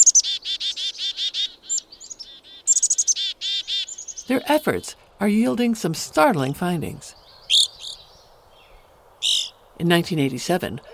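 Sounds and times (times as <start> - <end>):
Evening grosbeak calls: 0.0 - 5.0, 7.0 - 9.7
speech: 4.3 - 7.2, 9.8 - 10.9.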